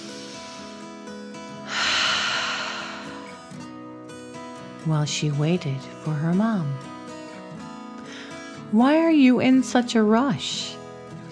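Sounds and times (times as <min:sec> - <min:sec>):
deep breath in and out: 0:01.6 - 0:03.6
speech: 0:04.8 - 0:06.9, 0:08.7 - 0:11.3.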